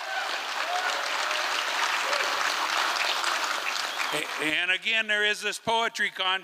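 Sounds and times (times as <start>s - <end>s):
roomful of people applauding: 0.0s - 4.7s
speech: 4.1s - 6.4s.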